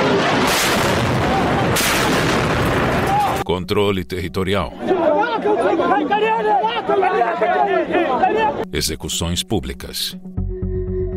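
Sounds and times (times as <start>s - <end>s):
sharp blasts: 0.0s - 3.2s
explosions roaring: 0.0s - 3.4s
speech: 3.5s - 10.4s.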